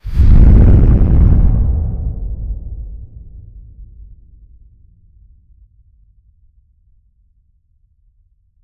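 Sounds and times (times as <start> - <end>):
big rumble: 0.0 - 5.0.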